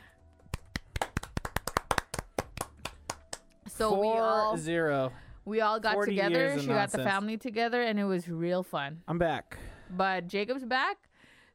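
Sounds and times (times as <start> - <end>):
hands clapping: 0.4 - 3.7
speech: 3.8 - 11.1.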